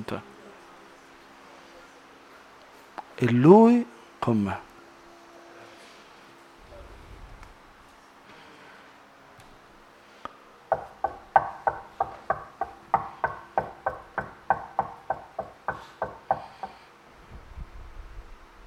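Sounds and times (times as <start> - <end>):
speech: 0.0 - 0.3, 3.2 - 4.7
knocking on a door: 10.7 - 16.8.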